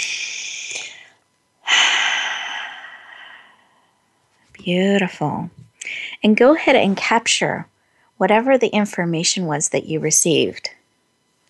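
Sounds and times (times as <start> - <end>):
deep breath before opening the eyes: 0.0 - 4.0
speech: 4.6 - 5.6, 6.2 - 10.7.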